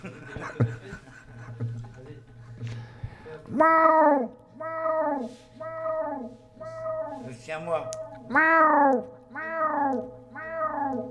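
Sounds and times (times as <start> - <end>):
laughter: 0.0 - 2.8
speech: 0.6 - 0.8, 3.6 - 4.4, 7.5 - 9.2
black cat meowing: 3.5 - 11.0.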